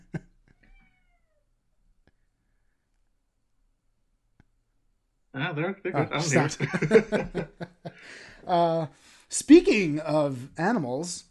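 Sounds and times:
cat outside meowing: 0.6 - 1.4
speech: 5.4 - 11.2
laughter: 6.0 - 8.3.

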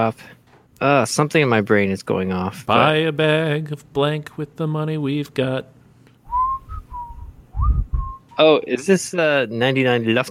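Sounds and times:
speech: 0.0 - 5.8, 8.4 - 10.2
person whistling a short melodic phrase: 6.3 - 8.4.

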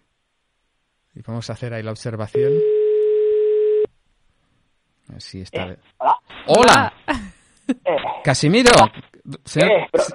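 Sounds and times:
speech: 1.2 - 2.8, 5.1 - 10.1
phone outgoing ringing tone electronic beep: 2.4 - 3.9.

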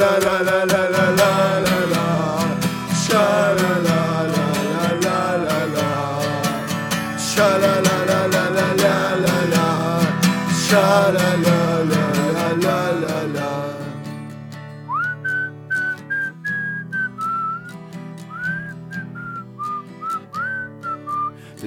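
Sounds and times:
instrumental music of a football club fan song: 0.0 - 21.6
speech: 0.2 - 0.8
person whistling a melody: 14.8 - 21.6.

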